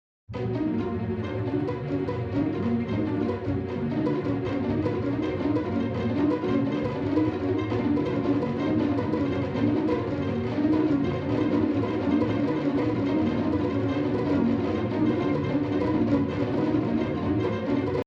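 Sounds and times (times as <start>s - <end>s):
aleatoric pizzicato strings: 0.3s - 18.0s.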